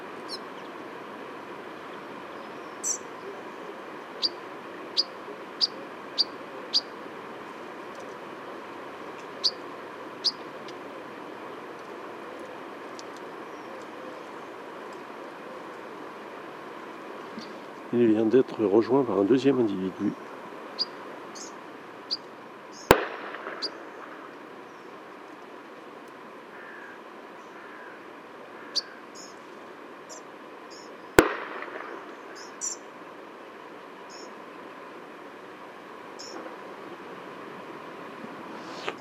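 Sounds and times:
scattered bird chirps outdoors: 0:00.0 - 0:08.2, 0:09.1 - 0:11.0, 0:11.6 - 0:25.4, 0:28.6 - 0:32.9, 0:34.0 - 0:34.5, 0:36.2 - 0:36.4
speech: 0:18.0 - 0:20.3
hunting gunshots during wood pigeon hunting: 0:22.9 - 0:23.8, 0:31.2 - 0:32.1.

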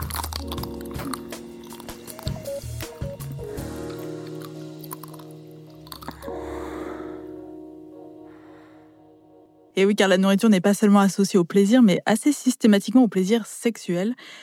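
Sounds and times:
chewing: 0:00.0 - 0:06.3
someone biting into a chocolate-coated ice cream bar: 0:00.0 - 0:06.3
speech: 0:09.8 - 0:14.4.

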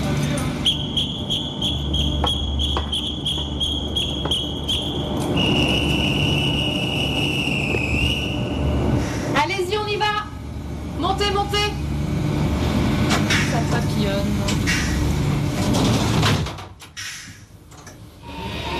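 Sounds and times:
noisy station bustle: 0:00.0 - 0:18.7
train conductor's departure whistle blast: 0:00.6 - 0:08.6.

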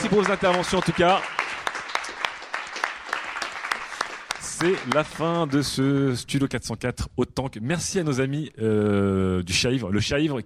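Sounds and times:
speech: 0:00.0 - 0:01.4, 0:04.6 - 0:10.4
audience applause at the close of a live recorded event session: 0:00.0 - 0:05.7.

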